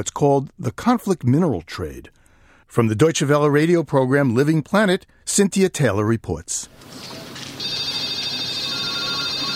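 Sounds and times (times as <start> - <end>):
speech: 0.0 - 7.2
mobile phone ringtone ringing: 7.6 - 9.5.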